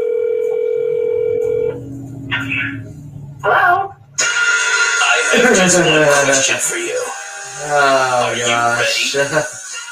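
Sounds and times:
telephone dial tone: 0.0 - 1.7
phone line noise: 0.0 - 2.9
speech: 3.4 - 3.8, 5.4 - 9.6
laughter: 5.1 - 6.7.

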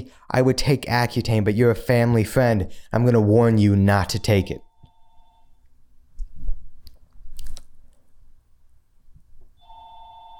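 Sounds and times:
speech: 0.1 - 4.6
telephone ringing with a steady electronic tone: 4.1 - 5.6, 9.6 - 10.3.

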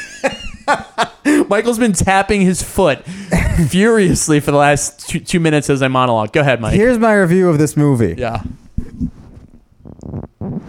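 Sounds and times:
speech: 0.7 - 9.1
man's fart blown into a microphone through track pants: 8.8 - 10.6.

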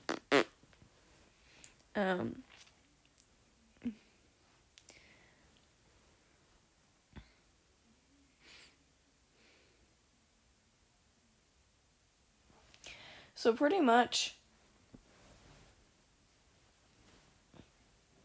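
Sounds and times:
short buzzy fart noises: 0.0 - 0.6
speech: 2.0 - 2.6, 3.8 - 4.0, 13.5 - 14.4.

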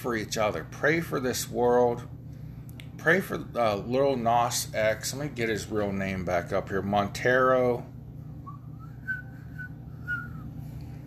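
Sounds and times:
speech: 0.0 - 2.2, 3.0 - 7.9
low hum: 0.0 - 11.0
feeble breathy attempt at whistling: 8.4 - 11.0.

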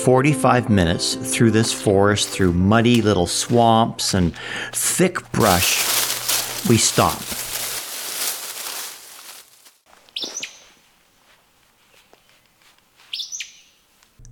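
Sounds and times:
speech: 0.0 - 6.0, 6.6 - 7.4
loud rustle: 5.4 - 9.8
Acadian flycatcher calling at a breeding site in forest: 10.1 - 10.8, 13.1 - 13.8.

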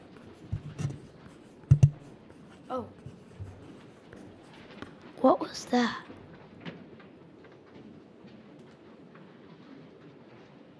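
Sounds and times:
damp rainbow-colored paper pieces stuck onto a papier-mache bowl: 0.0 - 5.0
speech: 2.7 - 3.0, 5.2 - 6.1.

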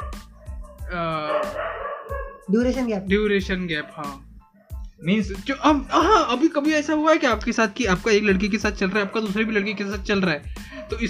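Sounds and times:
dog barking in sharp loud yaps: 0.0 - 2.5, 8.8 - 11.0
speech: 0.9 - 1.3, 2.5 - 4.3, 5.0 - 11.0.

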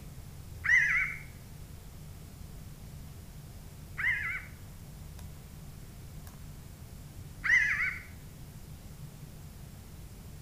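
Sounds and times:
Pinyon Jay nasal wavering mewing calls: 0.6 - 1.3, 4.0 - 4.6, 7.4 - 8.2.

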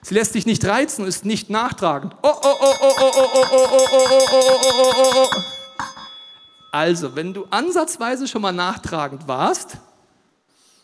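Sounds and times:
speech: 0.0 - 5.6, 6.8 - 9.9
bell being struck: 2.3 - 8.4.

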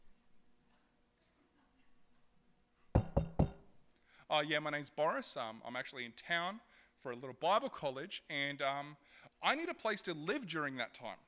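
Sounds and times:
knocking on a door: 3.0 - 3.7
speech: 4.3 - 11.2.

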